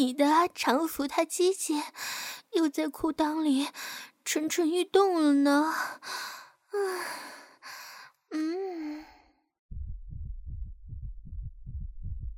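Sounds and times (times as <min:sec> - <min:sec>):
speech: 0:00.0 - 0:08.8
breathy gasps and sighs: 0:05.7 - 0:09.5
rapid heartbeat with deep thumps: 0:09.7 - 0:12.3.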